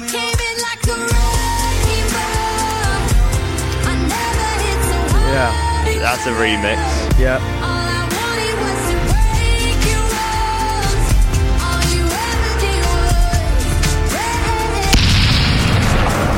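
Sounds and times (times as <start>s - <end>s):
thumping music track with horn-like blasts: 0.0s - 16.3s
speech: 5.4s - 7.8s
loud explosion sound effect: 14.9s - 16.3s.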